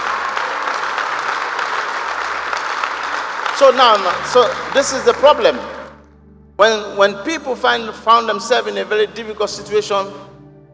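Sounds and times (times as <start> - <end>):
large indoor crowd applauding: 0.0 - 6.0
speech: 3.6 - 5.8, 6.6 - 10.3.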